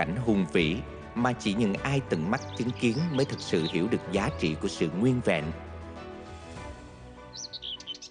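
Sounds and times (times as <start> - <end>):
speech: 0.0 - 5.7
seabirds calling on a breeding island: 2.2 - 4.3, 7.3 - 8.1.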